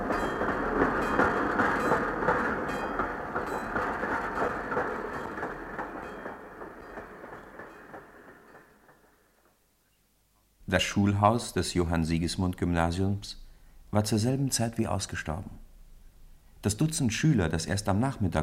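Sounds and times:
train rumbling and clattering as it pulls away: 0.0 - 9.5
speech: 10.7 - 15.6, 16.6 - 18.4.

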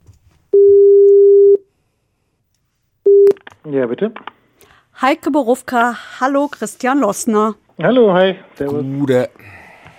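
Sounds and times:
telephone ringback tone while a call is placed: 0.6 - 1.6, 3.1 - 3.3
speech: 3.7 - 4.3, 5.0 - 9.9.

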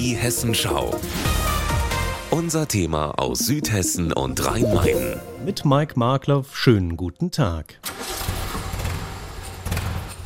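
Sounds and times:
speech: 0.0 - 1.5, 2.3 - 8.0
vintage Triumph TR3 sports car engine starting and revving: 7.8 - 10.2.

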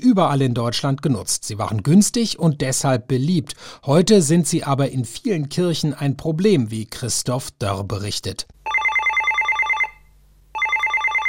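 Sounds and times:
speech: 0.0 - 8.6
telephone ringing with trilling bell tone: 8.6 - 11.2.

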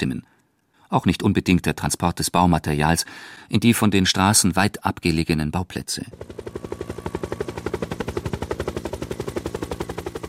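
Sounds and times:
speech: 0.9 - 6.8
helicopter rotor blades chopping in the Swiss mountains carrying a crate of beer: 6.1 - 10.2.

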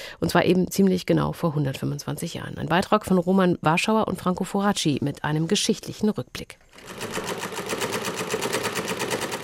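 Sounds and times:
speech: 0.2 - 7.3
sewing machine running: 6.7 - 9.4.

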